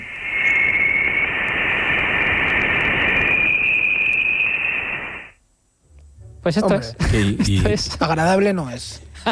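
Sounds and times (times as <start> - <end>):
bright whistling tone in Voyager plasma-wave recording of interstellar plasma: 0.0 - 5.4
Voyager spacecraft plasma-wave recording of interstellar plasma static hiss: 0.0 - 9.3
speech: 6.5 - 9.3.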